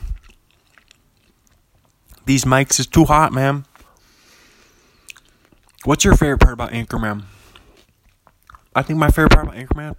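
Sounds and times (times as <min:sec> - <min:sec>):
chewing food with wet mouth clicks and light crunches: 0:00.0 - 0:02.3, 0:04.8 - 0:06.4, 0:07.0 - 0:08.9
speech: 0:02.3 - 0:03.7, 0:05.8 - 0:07.4, 0:08.8 - 0:09.9.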